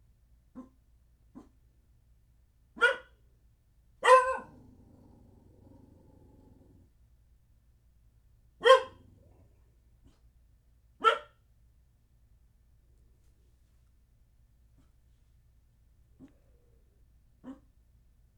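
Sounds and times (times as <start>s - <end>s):
small dog barking indoors in an apartment: 2.8s - 3.1s, 4.0s - 6.8s, 8.6s - 9.4s, 11.0s - 11.4s
small dog yipping indoors in an apartment: 2.8s - 3.1s, 4.0s - 4.6s, 8.6s - 9.0s, 11.0s - 11.3s.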